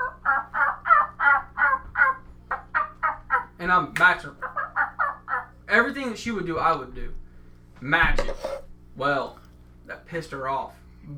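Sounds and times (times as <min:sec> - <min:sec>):
turkey hen cutting and clucking: 0:00.0 - 0:03.6, 0:04.2 - 0:05.6
speech: 0:03.6 - 0:04.4, 0:05.7 - 0:07.2, 0:07.8 - 0:11.1.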